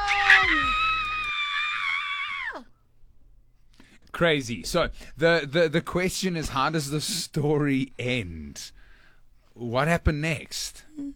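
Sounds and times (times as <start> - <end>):
person screaming: 0.0 - 2.7
speech: 4.2 - 8.8, 9.6 - 11.1.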